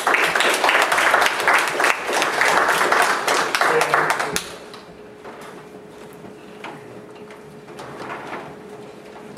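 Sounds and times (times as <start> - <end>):
audience applauding with dense loud clapping: 0.0 - 4.9.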